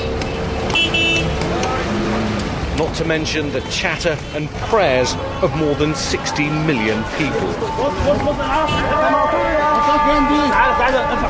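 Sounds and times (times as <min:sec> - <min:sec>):
busy city traffic in Cairo rumbling: 0:00.0 - 0:11.2
car horns tooting: 0:00.6 - 0:02.0, 0:03.2 - 0:11.2
speech: 0:03.0 - 0:11.2.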